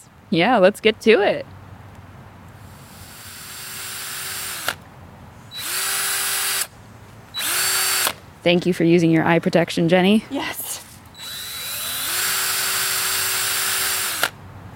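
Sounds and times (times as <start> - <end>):
speech: 0.3 - 1.6, 8.4 - 10.6
power drill drilling holes into a fresh hard red oak log: 2.8 - 4.8, 5.5 - 6.7, 7.4 - 8.2, 11.2 - 14.4.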